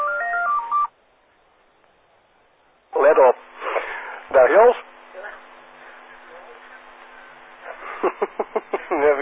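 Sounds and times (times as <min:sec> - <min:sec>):
telephone ringing with electronic warble: 0:00.0 - 0:00.9
speech: 0:04.4 - 0:04.9
laughter: 0:07.6 - 0:09.1.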